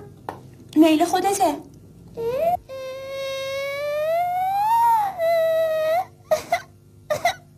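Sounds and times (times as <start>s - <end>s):
speech: 0.8s - 2.5s
child crying and sobbing: 2.2s - 7.4s.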